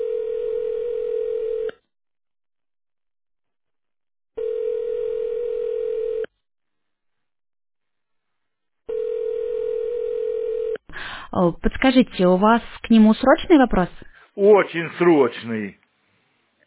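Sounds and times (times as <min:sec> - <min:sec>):
telephone ringback tone while a call waits to be answered: 0:00.0 - 0:01.7, 0:04.4 - 0:06.3, 0:08.9 - 0:10.8
speech: 0:11.4 - 0:15.8.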